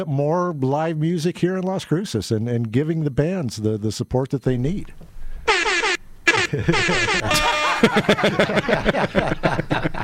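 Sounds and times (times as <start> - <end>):
speech: 0.0 - 5.6, 6.5 - 10.0
air horn sound effect: 5.5 - 8.0
people chatting and laughing: 6.3 - 10.0.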